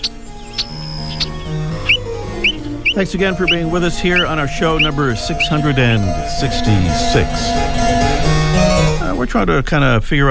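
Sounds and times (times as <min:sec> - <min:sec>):
bobolink singing: 0:00.0 - 0:06.8
speech: 0:03.0 - 0:07.9, 0:09.2 - 0:10.2.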